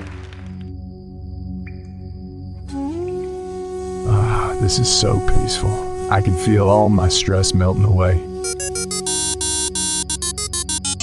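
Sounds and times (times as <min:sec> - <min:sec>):
speech: 0:04.6 - 0:08.9
mobile phone ringing with a bright electronic ringtone: 0:08.4 - 0:11.0.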